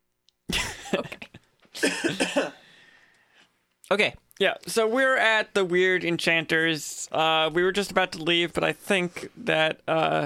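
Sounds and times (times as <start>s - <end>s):
speech: 0.9s - 2.6s, 3.9s - 10.2s
harsh hacking coughs into the microphone: 1.8s - 2.7s.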